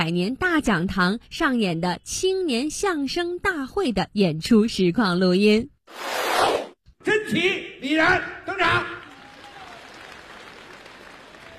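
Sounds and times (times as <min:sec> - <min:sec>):
speech: 0:00.0 - 0:06.3, 0:07.0 - 0:09.0
live audience applause at a youth crosstalk comedy show in a Peking University auditorium: 0:08.8 - 0:11.5.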